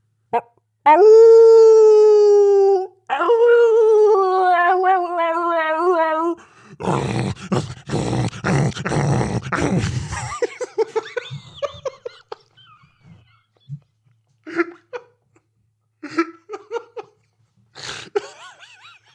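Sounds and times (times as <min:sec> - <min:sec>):
wolf howling: 0:00.9 - 0:07.9
laughter: 0:09.5 - 0:13.8, 0:14.5 - 0:15.1, 0:16.0 - 0:17.2, 0:18.0 - 0:19.1.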